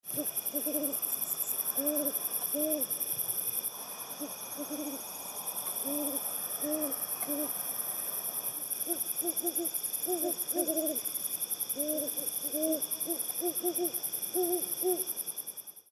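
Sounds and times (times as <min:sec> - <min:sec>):
great horned owl hooting: 0:00.1 - 0:03.0, 0:04.1 - 0:07.6, 0:08.8 - 0:11.1, 0:11.7 - 0:15.1.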